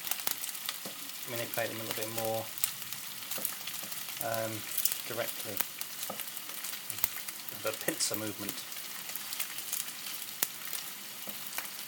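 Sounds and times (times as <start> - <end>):
narrow beef patties sizzling while frying: 0.0 - 11.8
speech: 1.3 - 2.6, 3.4 - 3.6, 4.2 - 6.3, 7.6 - 8.7.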